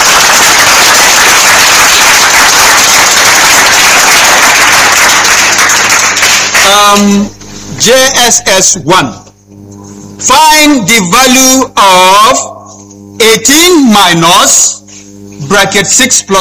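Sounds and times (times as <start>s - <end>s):
group applauding quiz participants at a school: 0.0s - 7.1s
speech: 6.9s - 9.2s, 10.2s - 12.5s, 13.2s - 14.8s, 15.5s - 16.3s.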